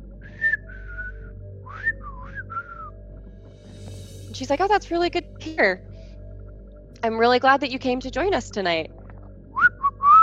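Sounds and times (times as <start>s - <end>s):
low steady hum: 0.0s - 9.7s
whistled notes with sliding pitch during a ghost hunt: 0.3s - 2.9s, 9.6s - 10.2s
speech: 4.4s - 5.9s, 7.0s - 9.0s.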